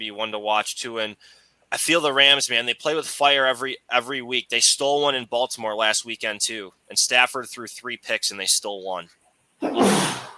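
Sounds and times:
speech: 0.0 - 10.3
person sneezing: 9.6 - 10.3.

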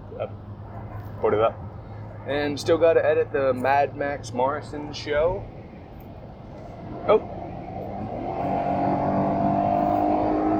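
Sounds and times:
road noise: 0.0 - 10.5
speech: 0.2 - 0.4, 1.2 - 5.6, 7.1 - 7.3
car engine accelerating onto a highway: 6.4 - 10.5.

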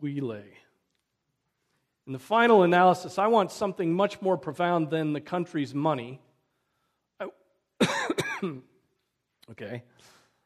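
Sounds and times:
speech: 0.0 - 0.7, 2.1 - 6.3, 7.2 - 8.7, 9.5 - 10.1
person coughing and clearing throat with sharp hacks: 7.8 - 8.8.

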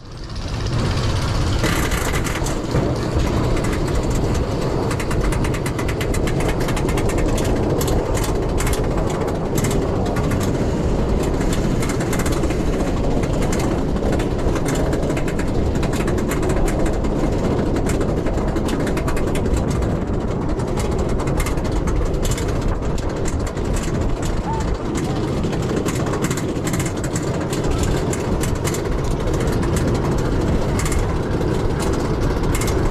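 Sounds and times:
heavy mechanical rumble of a roller coaster chain lift: 0.0 - 32.9
roller coaster cars clanking over anti-rollback pieces on a chain lift: 0.1 - 32.9.

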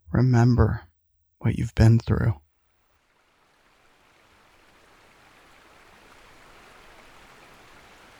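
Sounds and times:
speech: 0.2 - 2.4
small creek flowing: 3.0 - 8.1.

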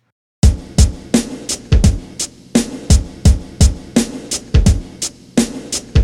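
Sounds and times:
deep booming kick drum: 0.4 - 2.2, 2.9 - 4.0, 4.6 - 5.0
crisp hi-hat hits: 0.4 - 6.0
looping backing track: 0.4 - 6.0.

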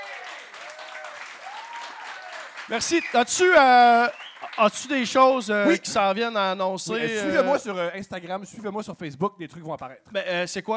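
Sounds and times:
faint cheers: 0.0 - 4.7
audience applause: 0.0 - 5.2
speech: 2.7 - 10.7.

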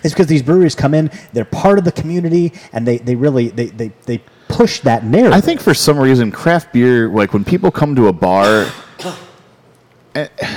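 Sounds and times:
speech: 0.0 - 9.2, 10.1 - 10.5
person coughing: 8.4 - 9.5, 10.2 - 10.5.

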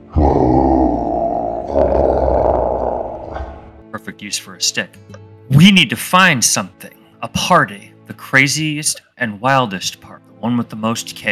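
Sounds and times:
person voicing a deep rough growl imitating a snarling creature: 0.0 - 3.8
speech: 4.2 - 11.3.

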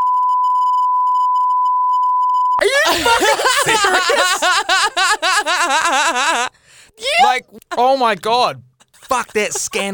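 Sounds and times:
loud electronic censor beep tone: 0.0 - 2.6
laughter: 2.6 - 7.9, 8.8 - 9.9
speech: 2.6 - 9.9.

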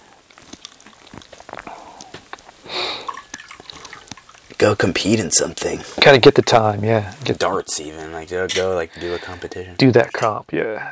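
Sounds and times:
coffee poured from a pot with its lid held on: 0.2 - 5.9
speech: 4.6 - 10.9.

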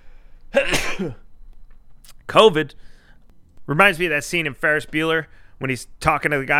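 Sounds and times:
person sneezing: 0.5 - 1.3
speech: 1.0 - 1.2, 2.3 - 2.9, 3.7 - 6.5.

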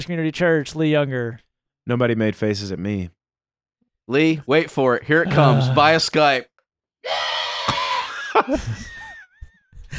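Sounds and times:
speech: 0.0 - 3.2, 4.1 - 7.2, 8.4 - 8.9
man yelling into computer monitor: 5.2 - 6.0.

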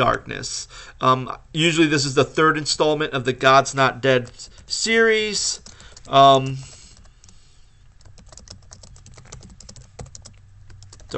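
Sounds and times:
speech: 0.0 - 6.7
low hum: 0.0 - 11.1
computer keyboard typing: 5.6 - 7.4, 8.0 - 11.1.

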